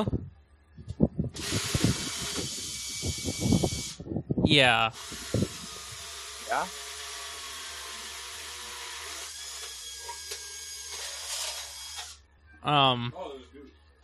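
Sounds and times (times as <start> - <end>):
speech: 0.0 - 0.3, 4.5 - 5.4, 6.5 - 6.9, 12.6 - 13.4
chainsaw running: 1.4 - 4.0, 4.9 - 12.2.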